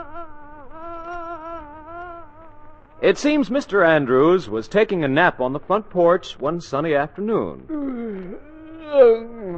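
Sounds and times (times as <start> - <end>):
housefly buzzing: 0.0 - 3.0
speech: 3.0 - 9.5.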